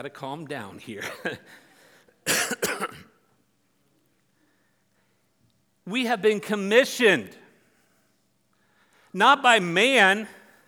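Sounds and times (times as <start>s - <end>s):
speech: 0.0s - 3.1s, 5.9s - 7.4s, 9.2s - 10.4s
person coughing after inhaling saliva: 1.0s - 1.4s, 2.2s - 3.3s.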